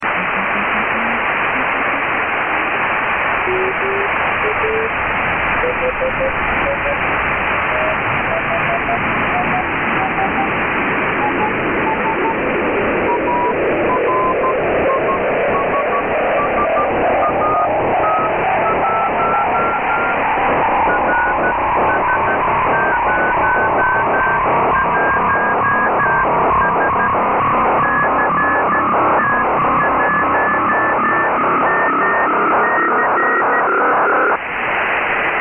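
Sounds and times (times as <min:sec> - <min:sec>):
BPSK digital radio signal: 0:00.0 - 0:35.4
CW morse code radio tones: 0:03.4 - 0:34.4.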